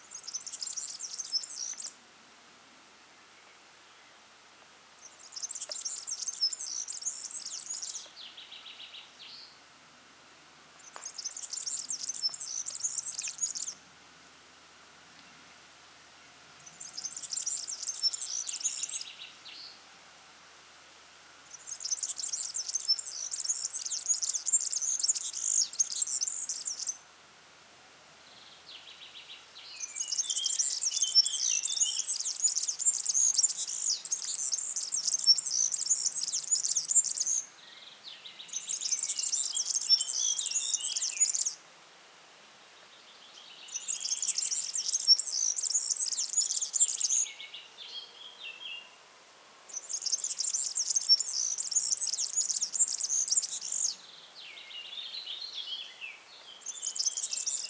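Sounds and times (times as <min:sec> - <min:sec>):
European serin Serinus serinus singing: 0:00.0 - 0:02.0, 0:05.0 - 0:09.6, 0:10.8 - 0:13.8, 0:16.6 - 0:19.7, 0:21.5 - 0:27.0, 0:28.3 - 0:41.6, 0:43.1 - 0:49.0, 0:49.7 - 0:57.6.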